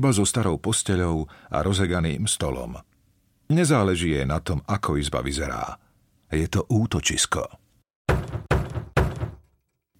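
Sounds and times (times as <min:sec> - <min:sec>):
speech: 0:00.0 - 0:02.9, 0:03.5 - 0:07.6
heavy knocking on a wooden front door: 0:08.1 - 0:09.5.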